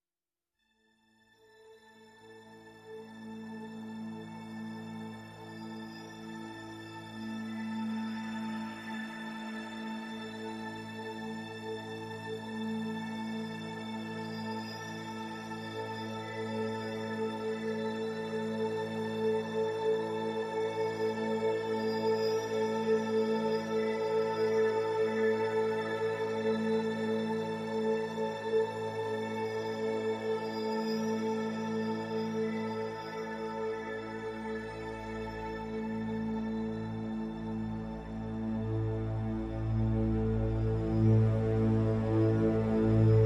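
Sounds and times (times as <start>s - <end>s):
strings: 1.9s - 43.2s
synth pads: 12.0s - 43.2s.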